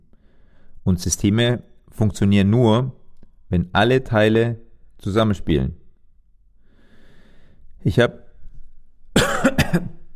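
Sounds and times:
speech: 0:00.8 - 0:05.8, 0:07.8 - 0:08.2, 0:09.7 - 0:10.0
person coughing: 0:09.2 - 0:10.1.

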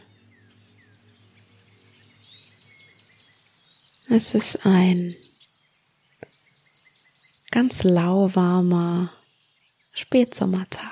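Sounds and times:
steady low humming drone: 0:00.0 - 0:05.5
birds chirping and tweeting in a forest on a mild late-summer day: 0:00.0 - 0:10.9
speech: 0:04.1 - 0:05.3, 0:07.6 - 0:09.2, 0:10.0 - 0:10.9.

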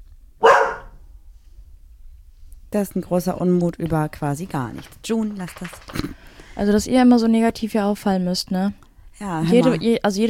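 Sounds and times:
dog barking: 0:00.4 - 0:01.0
speech: 0:02.7 - 0:10.2.

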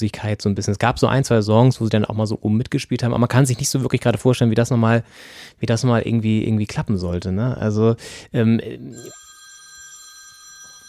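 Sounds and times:
speech: 0:00.0 - 0:09.2
telephone ringing with electronic tone: 0:08.9 - 0:10.8.

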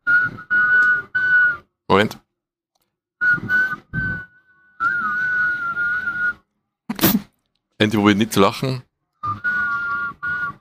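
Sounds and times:
person whistling into a microphone in two voices: 0:00.0 - 0:01.8, 0:03.2 - 0:06.5, 0:09.2 - 0:10.5
speech: 0:01.9 - 0:02.2, 0:07.8 - 0:09.5.

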